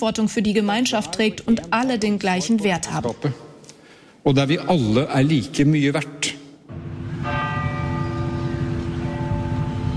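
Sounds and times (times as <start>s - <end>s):
speech: 0.0s - 3.5s, 4.2s - 6.4s
church bells ringing with overlapping metallic clang: 6.7s - 9.9s.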